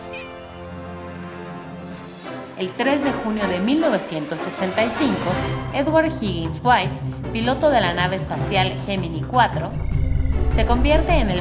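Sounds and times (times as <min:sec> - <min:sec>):
cat meowing: 0:00.0 - 0:00.8
speech: 0:02.6 - 0:10.0, 0:10.6 - 0:11.3.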